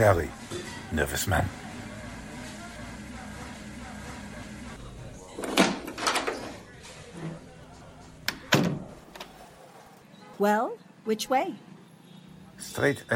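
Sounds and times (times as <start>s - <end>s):
speech: 0.0s - 1.6s, 10.4s - 11.7s, 12.8s - 13.1s
front door opening: 5.3s - 7.4s.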